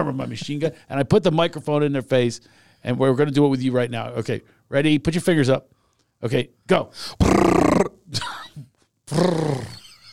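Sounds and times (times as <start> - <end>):
speech: 0.0 - 9.8
person imitating a lion roar: 7.2 - 8.0, 9.1 - 9.8.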